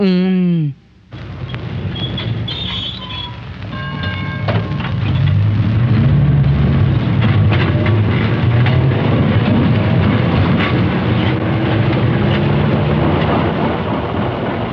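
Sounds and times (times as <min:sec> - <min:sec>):
speech: 0:00.0 - 0:00.8
tram rolling along its rails with a heavy low rumble: 0:01.1 - 0:14.7
thin metallic squeals of a tram: 0:01.9 - 0:05.4.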